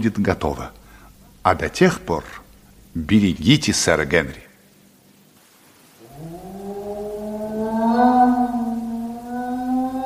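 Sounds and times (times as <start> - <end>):
speech: 0.0 - 0.8, 1.4 - 4.4
dog howling: 6.0 - 10.0.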